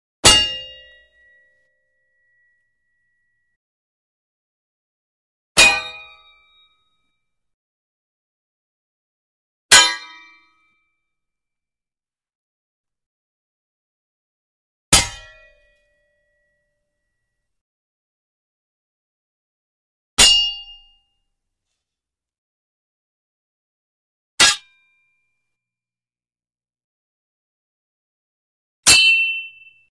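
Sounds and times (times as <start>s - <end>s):
single fat sword clank with ring: 0.2s - 1.0s, 5.6s - 6.4s, 15.0s - 15.5s, 20.2s - 21.0s, 24.4s - 24.8s, 28.9s - 29.8s.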